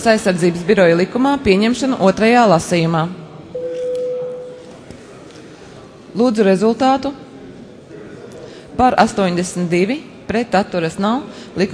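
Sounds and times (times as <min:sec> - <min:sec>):
speech: 0:00.0 - 0:03.2, 0:06.2 - 0:07.2, 0:08.8 - 0:11.7
low noise: 0:00.0 - 0:11.7
electronic tone signalling voting mode in a parliament chamber: 0:03.6 - 0:04.7.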